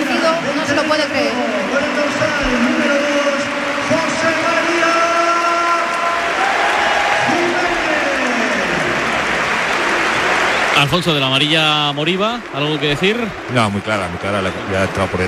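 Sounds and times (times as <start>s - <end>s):
large football stadium crowd applauding and cheering: 0.0s - 15.2s
speech: 10.9s - 15.2s.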